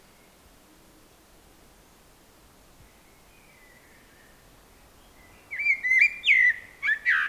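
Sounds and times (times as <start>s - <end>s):
common blackbird Turdus merula song phrase: 2.8s - 7.2s.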